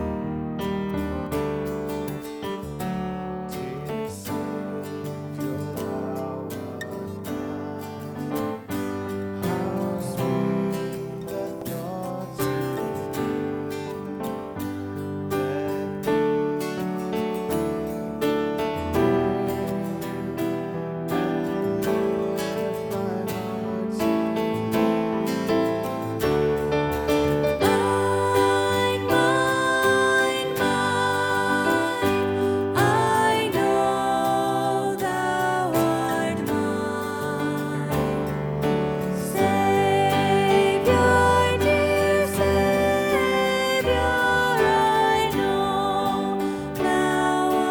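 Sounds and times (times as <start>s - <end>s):
soprano singing song parts: 0.2s - 47.7s.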